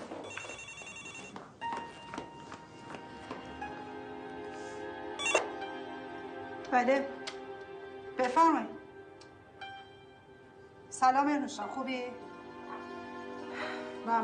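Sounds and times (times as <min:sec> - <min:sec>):
telephone ringing with bright electronic trills: 0:00.3 - 0:01.4, 0:05.2 - 0:05.5
speech: 0:06.7 - 0:07.1, 0:08.3 - 0:08.7, 0:11.0 - 0:12.3, 0:14.1 - 0:14.2.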